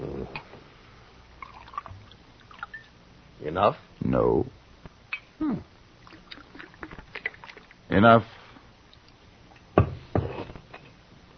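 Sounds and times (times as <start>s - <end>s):
drink splashing and gurgling into a cup: 1.4s - 2.9s, 6.0s - 7.8s
speech: 3.4s - 4.6s, 5.4s - 5.7s, 8.0s - 8.4s.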